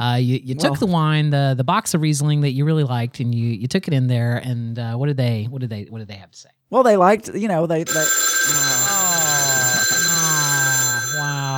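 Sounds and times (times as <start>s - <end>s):
speech: 0.0s - 9.0s
telephone bell ringing: 7.9s - 11.5s.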